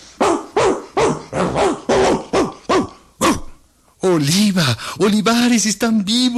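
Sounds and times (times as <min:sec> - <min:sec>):
dogs barking in sharp yelping bursts: 0:00.2 - 0:03.5
speech: 0:04.0 - 0:06.3.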